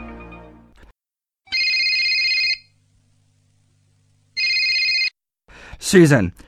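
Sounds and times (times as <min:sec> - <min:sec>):
telephone ringing in buzzy bursts: 0:01.5 - 0:02.8, 0:04.4 - 0:05.2
speech: 0:05.9 - 0:06.4.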